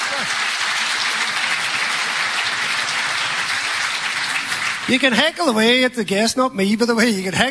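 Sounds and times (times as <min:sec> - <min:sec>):
crowd applause: 0:00.0 - 0:06.0
speech: 0:04.9 - 0:07.4.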